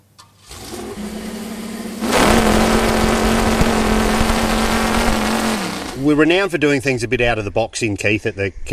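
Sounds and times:
chainsaw powered by V8 car engine running: 0:00.4 - 0:06.4
speech: 0:06.1 - 0:08.7.

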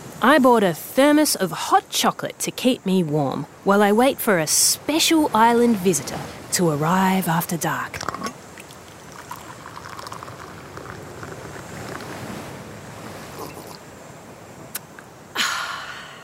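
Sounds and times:
speech: 0:00.2 - 0:08.4
ocean surf on an island shore at sunset: 0:03.5 - 0:16.2.

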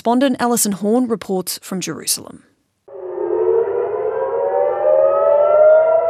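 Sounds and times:
speech: 0:00.0 - 0:02.5
air raid sirens wailing in Haifa warning of incoming missiles: 0:02.9 - 0:06.0.

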